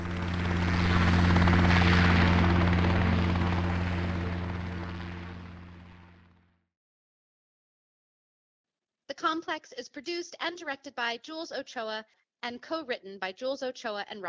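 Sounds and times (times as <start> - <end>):
helicopter rotor thumping with droning engine hum: 0.0 - 6.5
speech: 9.2 - 14.2.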